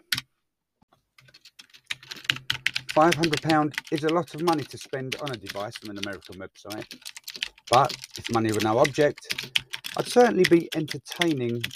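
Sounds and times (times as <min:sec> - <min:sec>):
mechanical keyboard keys typing on a simple writing device: 0:01.2 - 0:11.7
speech: 0:03.0 - 0:11.7.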